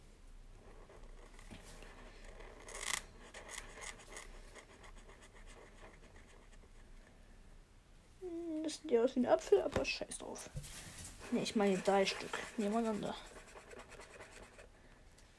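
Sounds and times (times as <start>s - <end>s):
scratching strokes of drawing by hand, sketching an orange: 0.5s - 7.1s, 11.1s - 14.7s
speech: 8.7s - 13.3s.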